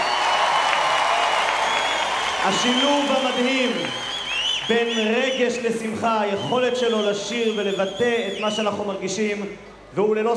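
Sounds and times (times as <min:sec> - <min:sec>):
audience applause at a live event: 0:00.0 - 0:05.0
speech: 0:02.4 - 0:04.1, 0:04.7 - 0:10.3.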